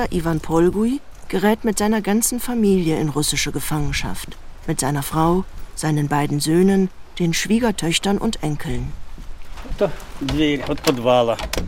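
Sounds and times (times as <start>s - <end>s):
speech: 0.0s - 9.0s, 9.7s - 11.6s
green wooden school cellar door creaking open: 9.4s - 11.6s.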